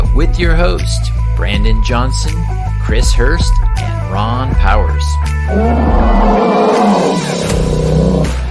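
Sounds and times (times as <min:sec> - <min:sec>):
speech: 0:00.2 - 0:07.4
bear roaring: 0:05.5 - 0:08.4.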